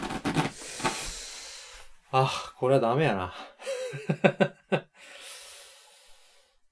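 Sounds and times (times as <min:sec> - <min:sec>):
styrofoam packing pulled out of a cardboard box: 0:00.0 - 0:01.2
speech: 0:02.2 - 0:04.6.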